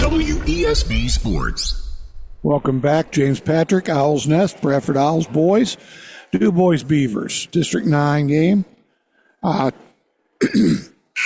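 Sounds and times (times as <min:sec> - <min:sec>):
speech: 0:00.2 - 0:08.7, 0:09.4 - 0:09.8, 0:10.4 - 0:11.2
sports commentator clearing throat: 0:10.4 - 0:11.2.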